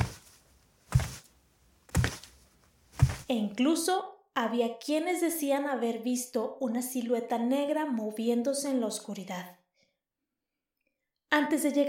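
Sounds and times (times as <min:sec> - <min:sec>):
slow heavy booming footsteps: 0:00.0 - 0:03.3
speech: 0:03.3 - 0:09.6, 0:11.3 - 0:11.8.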